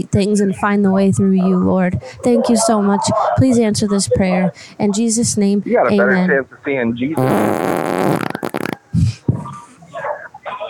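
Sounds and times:
laughter: 0.0s - 7.0s, 8.2s - 10.6s
speech: 0.0s - 8.3s
loud long raspy fart: 7.2s - 9.0s.

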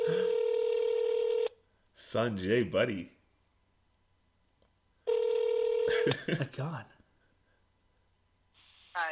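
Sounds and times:
phone line ringback tone on an outgoing call: 0.0s - 1.5s, 5.1s - 6.0s
speech: 2.0s - 3.2s, 6.1s - 7.0s.

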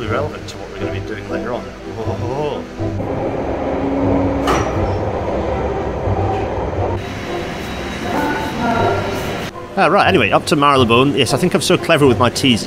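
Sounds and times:
speech: 0.0s - 2.9s, 9.8s - 12.6s
old Bakerloo line tube train rumbling through a tunnel: 0.0s - 12.6s
tube train metallic screeches: 3.0s - 9.5s.

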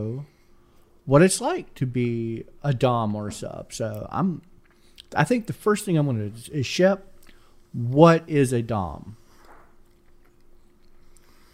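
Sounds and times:
low steady hum: 0.0s - 11.5s
speech: 1.1s - 4.5s, 5.1s - 7.1s, 7.7s - 9.2s
person chewing food: 9.4s - 11.5s.

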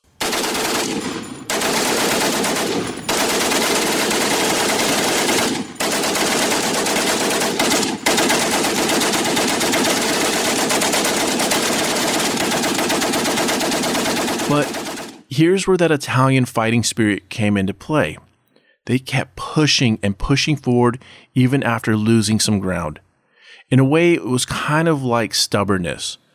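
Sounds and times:
machine gun fire: 0.0s - 15.2s
speech: 15.4s - 18.3s, 18.9s - 23.0s, 23.6s - 26.2s.

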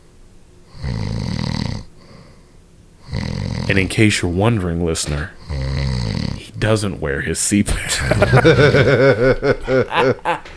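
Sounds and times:
man snoring while asleep: 0.7s - 4.0s, 5.2s - 6.7s
speech: 3.7s - 5.7s, 6.6s - 10.4s
laughter: 7.7s - 10.5s.

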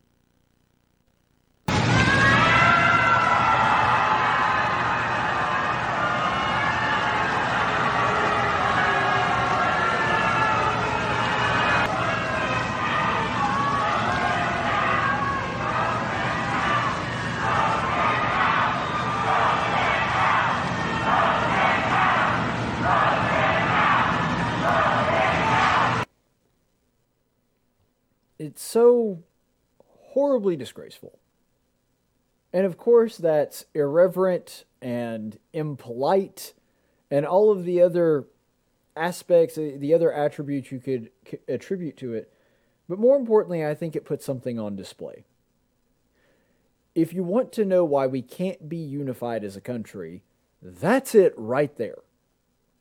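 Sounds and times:
large crowd at the Supreme Court building booing: 1.7s - 26.1s
speech: 30.4s - 31.4s, 32.5s - 38.3s, 39.0s - 42.3s, 42.9s - 45.3s, 47.0s - 52.0s.

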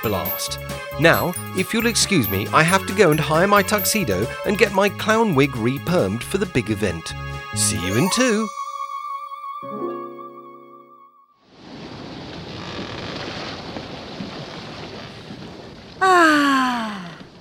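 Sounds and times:
speech: 0.0s - 8.6s
steady wind on open sea: 11.5s - 17.3s.

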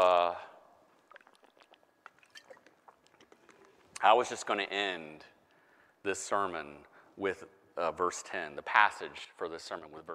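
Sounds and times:
water being poured or sipped: 0.8s - 4.1s
speech: 4.0s - 5.3s, 6.0s - 10.1s.

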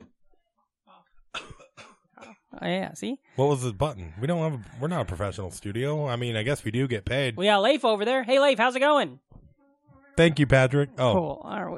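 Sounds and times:
sharp coughs: 1.4s - 2.5s
speech: 2.6s - 9.3s, 10.2s - 11.7s.

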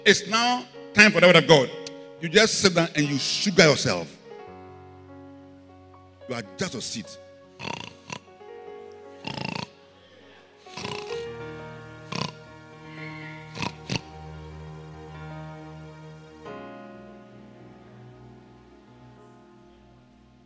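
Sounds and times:
speech: 0.0s - 4.2s, 6.3s - 7.8s
person imitating loud snoring: 7.6s - 8.3s, 9.2s - 9.8s, 10.7s - 11.3s, 12.0s - 14.1s.

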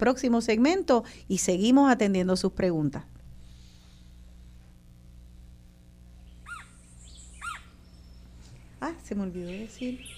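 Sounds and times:
speech: 0.0s - 3.2s, 8.8s - 10.1s
low steady hum: 0.0s - 10.1s
Puerto Rican woodpecker Melanerpes portoricensis calling: 6.2s - 10.1s.

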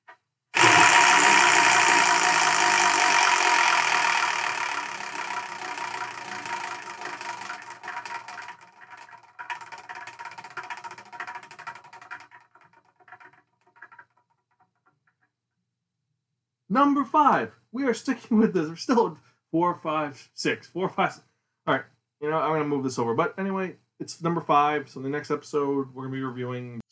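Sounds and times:
prize wheel spinning: 0.6s - 14.8s
speech: 16.8s - 26.8s.

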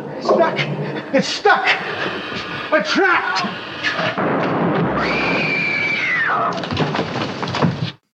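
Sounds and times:
speech: 0.2s - 5.3s, 6.4s - 7.1s
explosion rumbling and crackling: 3.7s - 7.9s
debris popping: 4.1s - 8.0s.

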